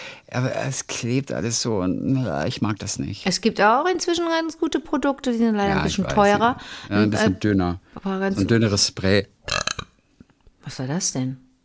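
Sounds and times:
speech: 0.3 - 9.6, 10.7 - 11.4
loud burp: 9.4 - 10.0.

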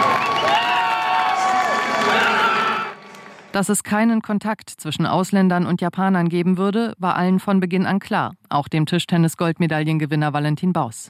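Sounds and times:
small group of team members cheering and shouting from the stands: 0.0 - 3.2
speech: 3.6 - 11.0.

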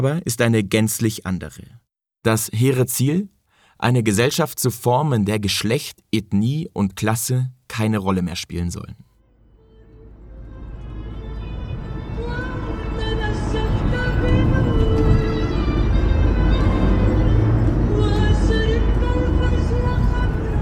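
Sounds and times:
speech: 0.0 - 9.1
car engine rumbling while driving through busy city streets of Raqqa: 9.2 - 20.6
dense continuous city traffic noise in Raqqa: 9.2 - 20.6.

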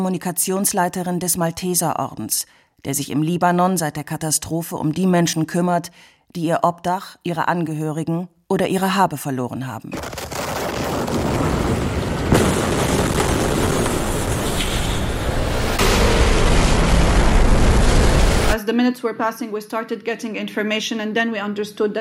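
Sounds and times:
speech: 0.0 - 10.2, 18.7 - 21.9
large explosion at a port: 10.0 - 18.6.

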